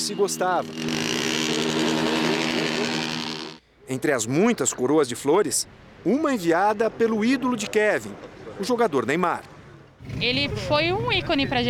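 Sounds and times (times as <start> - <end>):
speech: 0.0 - 2.2, 3.9 - 11.6
many motorcycle engines roaring in a funeral procession: 0.0 - 3.6, 9.6 - 11.6.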